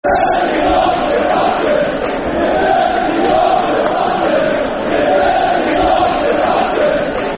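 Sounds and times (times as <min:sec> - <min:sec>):
football crowd chanting: 0:00.0 - 0:07.3.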